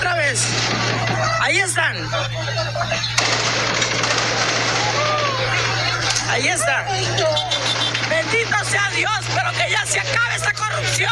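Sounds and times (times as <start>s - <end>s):
laughter: 0.4s - 11.1s
speech: 1.5s - 3.7s, 6.3s - 11.1s
gunfire bursts: 3.2s - 5.0s.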